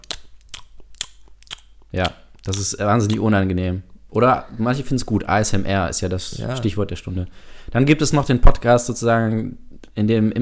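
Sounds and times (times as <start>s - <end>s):
chewing gum smacks from presenters chewing gum: 0.0s - 3.3s
soft mouth sounds: 0.0s - 3.3s
speech: 1.9s - 10.4s.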